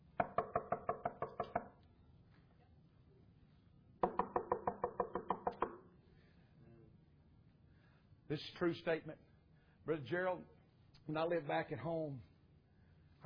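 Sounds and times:
knocking on wood: 0.1 - 1.8, 4.0 - 5.8
speech: 8.3 - 12.3.

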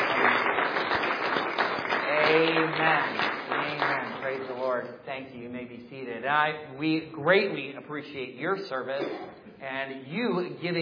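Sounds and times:
audience applause for armed forces veterans during a religious service: 0.0 - 4.7
speech: 2.8 - 3.2, 4.8 - 10.8.

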